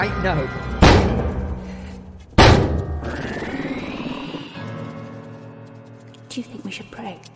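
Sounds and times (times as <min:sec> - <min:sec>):
speech: 0:00.0 - 0:01.3, 0:06.4 - 0:07.3
heavy door slamming shut: 0:00.8 - 0:01.5, 0:02.4 - 0:03.0.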